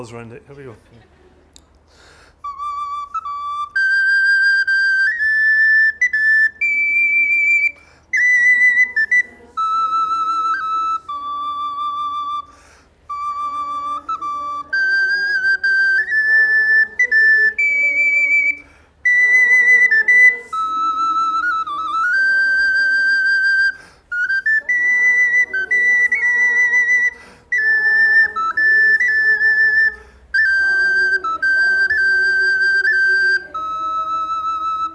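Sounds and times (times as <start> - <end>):
speech: 0.0 - 1.2
player breathing between phrases: 1.8 - 2.5, 7.8 - 8.1, 12.5 - 13.0, 18.6 - 19.0, 23.8 - 24.2, 27.1 - 27.6
small high whistle playing a lilting folk melody: 2.0 - 34.9.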